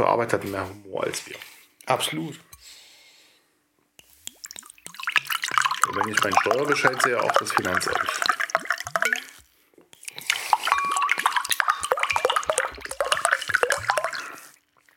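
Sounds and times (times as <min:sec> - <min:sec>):
speech: 0:00.0 - 0:02.8, 0:05.9 - 0:08.4
water splashing: 0:04.1 - 0:14.9.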